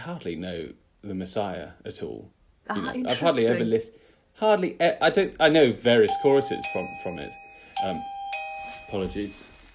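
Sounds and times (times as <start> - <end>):
speech: 0.0 - 8.1, 8.9 - 9.5
electronic doorbell chiming: 6.0 - 9.6.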